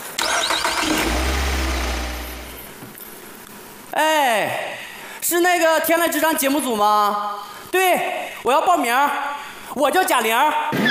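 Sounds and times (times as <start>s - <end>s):
car engine starting: 0.0s - 2.8s
speech: 5.3s - 10.8s.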